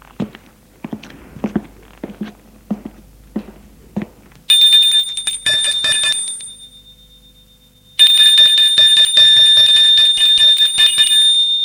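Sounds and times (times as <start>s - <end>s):
footsteps approaching: 0.0s - 5.4s
loud electric doorbell ringing with a shrill continuous buzz: 4.5s - 11.6s.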